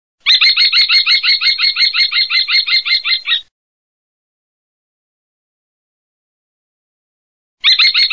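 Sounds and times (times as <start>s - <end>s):
kestrel: 0.2s - 3.5s, 7.6s - 8.1s.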